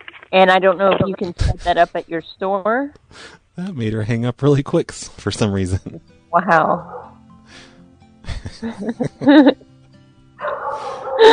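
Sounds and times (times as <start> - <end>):
speech: 0.3 - 7.7, 8.4 - 9.6, 11.2 - 11.3
laughter: 1.0 - 2.0, 8.2 - 9.6, 10.8 - 11.3
dog barking and yipping: 6.8 - 7.2, 10.4 - 11.3.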